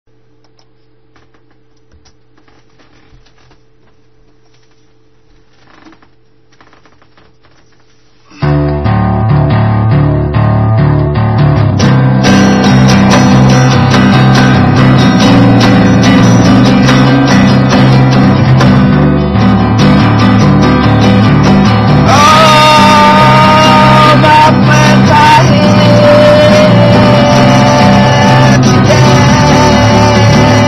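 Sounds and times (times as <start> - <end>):
acoustic bass: 7.1 - 30.6.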